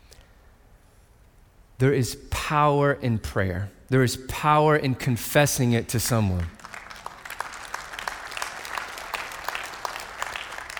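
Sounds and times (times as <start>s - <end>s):
speech: 1.8s - 6.6s
crowd clapping: 6.3s - 10.7s.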